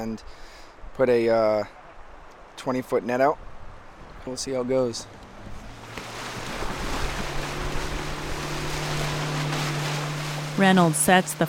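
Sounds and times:
speech: 0:00.0 - 0:01.8, 0:02.6 - 0:03.5, 0:04.2 - 0:05.2, 0:10.6 - 0:11.4
rushing water of a river heard from a boat: 0:00.0 - 0:11.4
low steady boat engine hum: 0:04.8 - 0:11.4.

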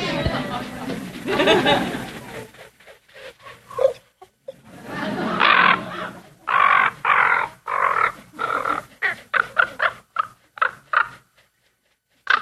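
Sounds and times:
laughter: 0:00.0 - 0:02.7, 0:04.5 - 0:06.5
mob of ravens croaking and gurgling above a moose carcass outside Glacier Bay Alaska: 0:05.0 - 0:11.4.

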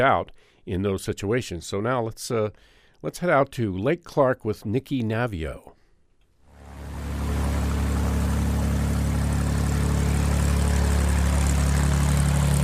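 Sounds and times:
speech: 0:00.0 - 0:05.8
small propeller bush plane engine droning in flight: 0:06.5 - 0:12.6.

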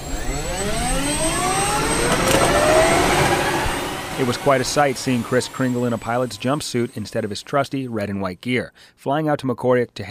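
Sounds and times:
Black Hawk helicopter turbine engine roaring and spooling up: 0:00.0 - 0:08.1
speech: 0:04.2 - 0:10.1.

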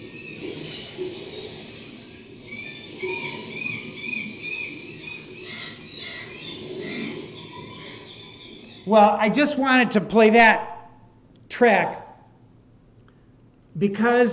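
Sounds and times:
raven calling: 0:00.0 - 0:09.4
birds chirping and squawking outdoors: 0:00.0 - 0:09.9
speech: 0:08.9 - 0:10.7, 0:11.6 - 0:12.0, 0:13.8 - 0:14.3.

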